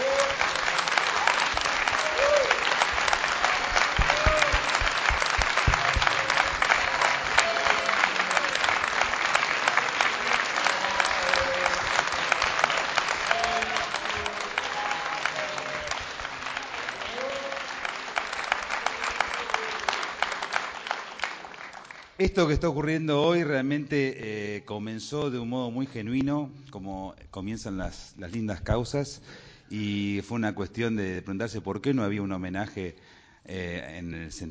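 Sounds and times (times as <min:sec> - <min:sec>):
audience applause at a tribute to a national folk singer: 0:00.0 - 0:22.2
speech: 0:22.2 - 0:34.5.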